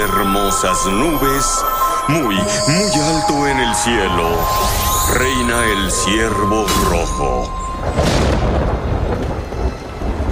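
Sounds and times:
speech: 0:00.0 - 0:08.5
thunder rumbling: 0:04.8 - 0:10.2.

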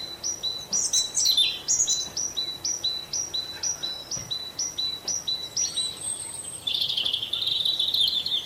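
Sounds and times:
great tit singing a two-note phrase: 0:00.0 - 0:08.4
higher chattering calls: 0:00.0 - 0:08.4.

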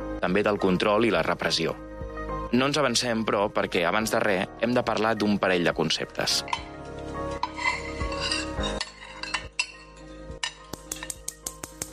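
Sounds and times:
speech: 0:00.2 - 0:01.9, 0:02.5 - 0:06.7
cooking pot and metal utensils clattering: 0:06.3 - 0:11.6.

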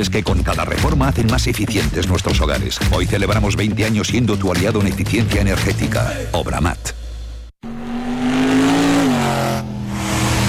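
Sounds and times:
speech: 0:00.0 - 0:07.0
car engine revving at a touring motor show in Abrera, Catalonia: 0:07.0 - 0:10.4.

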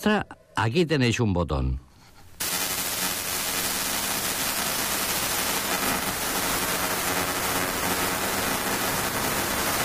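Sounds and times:
speech: 0:00.0 - 0:01.9
L-band aeronautical radar signal fast pulsing: 0:02.4 - 0:09.8
buzzy low hum: 0:02.4 - 0:09.8
dense hissing radio static: 0:02.4 - 0:09.8.

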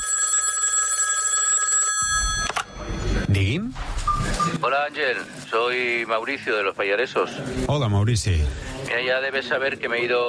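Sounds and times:
telephone ringing with an incoming call: 0:00.0 - 0:03.3
speech: 0:03.4 - 0:10.2.

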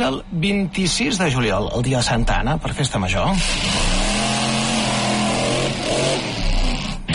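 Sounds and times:
speech: 0:00.0 - 0:04.0
stunt car engine revving: 0:03.4 - 0:07.1.

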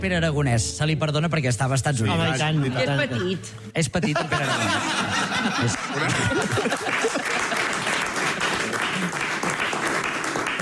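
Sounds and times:
speech: 0:00.0 - 0:07.2
laughter: 0:02.1 - 0:09.7
room full of people clapping: 0:05.0 - 0:10.6.

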